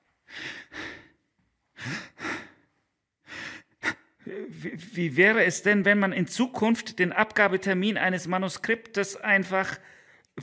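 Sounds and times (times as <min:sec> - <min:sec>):
person breathing in and out during meditation: 0:00.1 - 0:04.4, 0:09.8 - 0:10.4
speech: 0:04.3 - 0:10.4.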